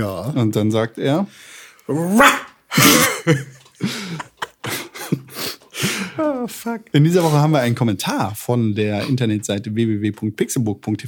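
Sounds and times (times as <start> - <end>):
speech: 0.0 - 4.0, 6.5 - 11.0
dog barking loudly: 2.1 - 2.6
laughter: 3.1 - 6.6.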